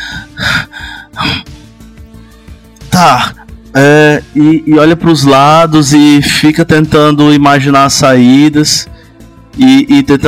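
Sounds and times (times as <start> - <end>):
person imitating deep shaky breathing: 0.0 - 2.8
speech: 3.0 - 9.0, 9.6 - 10.2.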